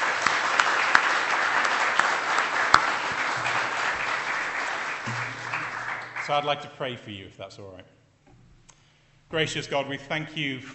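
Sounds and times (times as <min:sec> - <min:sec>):
sharp hand claps: 0:00.0 - 0:06.5
room full of people applauding: 0:00.0 - 0:06.6
speech: 0:06.3 - 0:08.0, 0:09.3 - 0:10.7.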